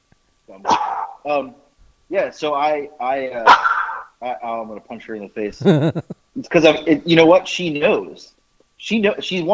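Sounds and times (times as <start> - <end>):
speech: 0.5 - 9.5
dog barking and yelping in loud short bursts: 0.7 - 1.2, 3.4 - 4.1
laughter: 5.5 - 6.2.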